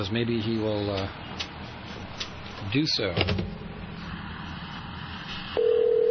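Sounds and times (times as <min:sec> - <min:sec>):
speech: 0:00.0 - 0:01.4, 0:02.6 - 0:03.6
sustained electronic telephone tone: 0:05.6 - 0:06.0.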